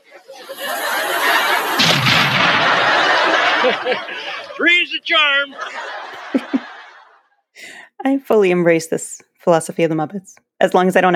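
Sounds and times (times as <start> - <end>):
laughter: 0.0 - 7.3
bomb exploding in a sudden blast and loud broadband roar: 1.2 - 4.6
deep rumbling boom: 1.8 - 3.6
speech: 3.7 - 6.4, 8.0 - 11.1.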